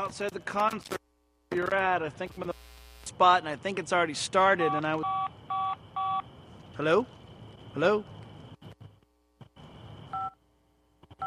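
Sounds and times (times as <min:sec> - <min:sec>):
speech: 0:00.0 - 0:02.6, 0:03.2 - 0:05.2, 0:06.8 - 0:08.2
voicemail electronic phone beeps cutting off a phone call: 0:04.6 - 0:06.2, 0:10.1 - 0:10.4.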